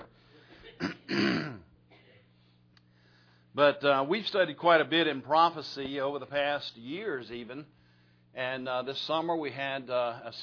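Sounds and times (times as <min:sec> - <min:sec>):
person coughing: 0:00.4 - 0:02.3
person clearing throat: 0:00.5 - 0:02.3
speech: 0:03.6 - 0:07.8, 0:08.4 - 0:10.4.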